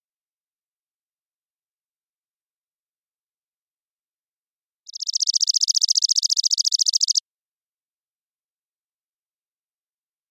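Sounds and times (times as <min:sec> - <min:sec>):
Chipping sparrow Spizella passerina trilling song in Washington: 0:04.9 - 0:07.2.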